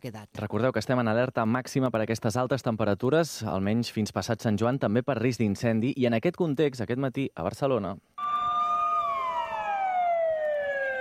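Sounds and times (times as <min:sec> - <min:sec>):
speech: 0:00.0 - 0:08.3
fire engine siren wailing at a firefighters' protest in Barcelona: 0:08.2 - 0:10.9.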